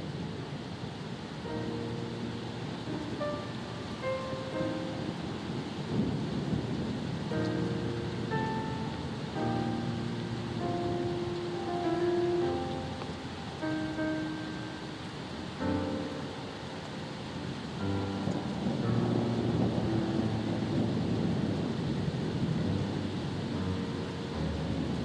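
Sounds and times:
calm relaxing music: 0.0 - 25.0
soft rain: 0.0 - 25.0
storm at sea rumbling low: 0.0 - 25.0.

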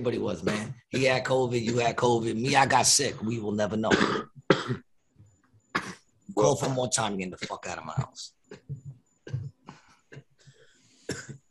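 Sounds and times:
speech: 0.0 - 4.8, 6.4 - 8.8
harsh coughing: 0.4 - 2.7, 3.9 - 4.9, 5.7 - 6.8, 8.5 - 10.3, 11.0 - 11.4.

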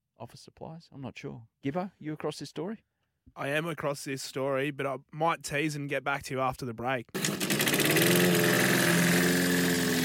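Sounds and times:
speech: 0.2 - 9.1
lawn mower engine starting and idling: 7.2 - 10.0.

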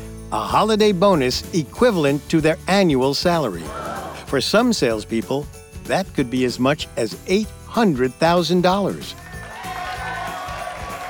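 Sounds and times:
speech: 0.3 - 9.2
large crowd cheering and roaring: 3.6 - 4.4, 9.2 - 11.0.

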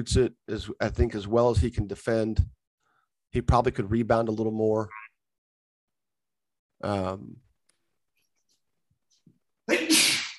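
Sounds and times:
speech: 0.0 - 2.6, 3.3 - 5.0, 6.8 - 7.4
loud sneeze: 9.7 - 10.3.

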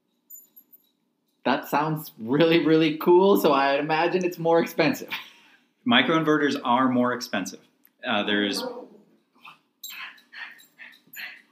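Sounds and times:
speech: 1.5 - 8.8
pet dog barking: 8.6 - 9.0.

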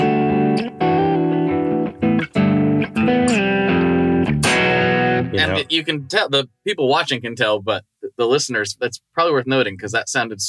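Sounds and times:
dual-humbucker electric guitar playing chords with edge-of-breakup tone: 0.0 - 5.7
speech: 5.4 - 10.4.

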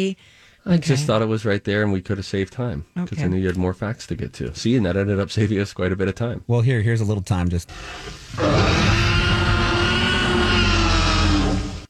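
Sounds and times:
speech: 0.0 - 9.0
deep guttural roar blended from baby elephant, tiger and alligator sounds: 7.7 - 11.8.

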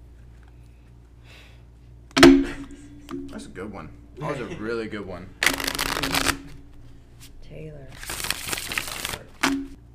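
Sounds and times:
speech: 3.4 - 6.6, 7.2 - 8.8
deck of cards being shuffled: 5.4 - 6.6, 7.2 - 9.8.

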